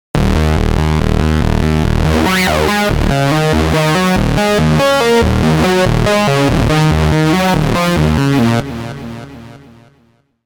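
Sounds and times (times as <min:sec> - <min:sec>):
Korg synthesizer sound: 0:00.3 - 0:09.2.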